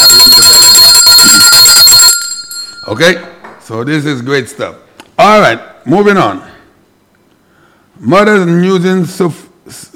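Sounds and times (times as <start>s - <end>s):
bright high-pitched bell ringing: 0.0s - 3.4s
speech: 2.9s - 6.5s, 8.1s - 9.4s.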